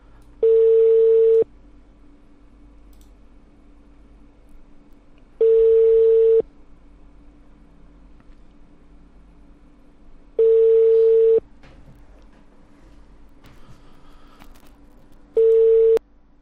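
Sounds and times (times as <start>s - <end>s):
telephone call tones for unreachable subscriber: 0.4s - 1.4s, 5.4s - 6.4s, 10.4s - 11.4s, 15.4s - 16.0s.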